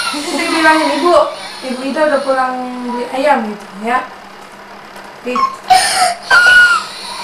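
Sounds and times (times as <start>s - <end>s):
child crying in sobbing bursts: 0.0s - 3.3s, 5.4s - 7.2s
speech: 0.2s - 4.2s, 5.2s - 6.9s.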